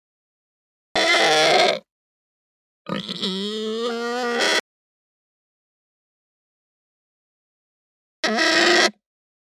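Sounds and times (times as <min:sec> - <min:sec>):
Hampshire pig squealing: 0:01.0 - 0:01.8, 0:02.9 - 0:04.6, 0:08.2 - 0:09.0.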